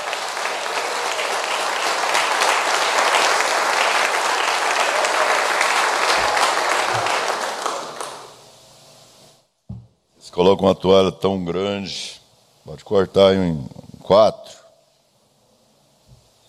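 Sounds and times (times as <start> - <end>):
audience applauding: 0.0 - 8.5
speech: 10.4 - 14.6.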